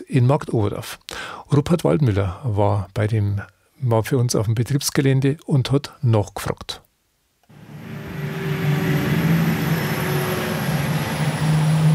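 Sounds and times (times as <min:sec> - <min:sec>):
speech: 0:00.1 - 0:06.8
electric truck humming with low tonal drone: 0:07.5 - 0:11.9
truck tires rolling on asphalt: 0:07.5 - 0:11.9.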